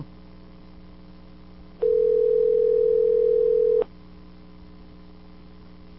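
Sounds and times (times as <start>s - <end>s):
faint low hum: 0.0s - 5.9s
telephone dial tone after dialing a number: 1.8s - 3.9s.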